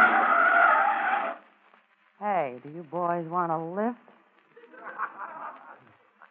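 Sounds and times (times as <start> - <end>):
car tire skid screeching as it brakes hard: 0.0 - 1.4
speech: 2.7 - 4.1
laughter: 4.5 - 6.1.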